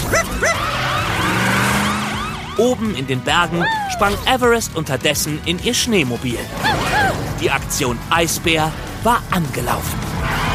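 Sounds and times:
police car siren wailing: 0.0s - 4.3s
speech: 2.6s - 10.4s.

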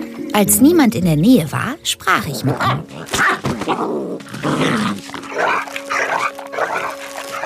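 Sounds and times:
speech: 0.4s - 5.8s
coyote growling and snarling, straining against its tether: 2.1s - 7.4s.

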